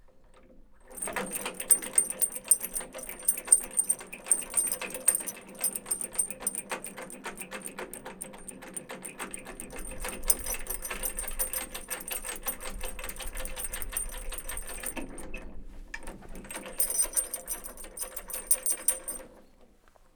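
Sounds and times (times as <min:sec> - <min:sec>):
hanging chain rattling at a wheel well: 0:00.9 - 0:15.4, 0:16.5 - 0:19.3.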